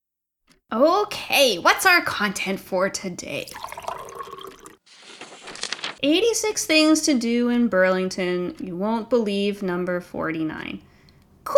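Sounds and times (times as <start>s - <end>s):
speech: 0.7s - 3.8s, 6.0s - 10.9s
coffee pouring into a cup with gurgling: 3.4s - 4.8s.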